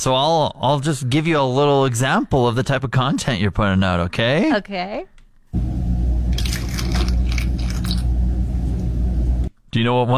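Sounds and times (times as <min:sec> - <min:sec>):
speech: 0:00.0 - 0:05.7, 0:09.7 - 0:10.1
milk pouring into a glass of ice for an iced latte: 0:06.3 - 0:08.8
ice crackling and clinking in a glass: 0:06.3 - 0:08.9.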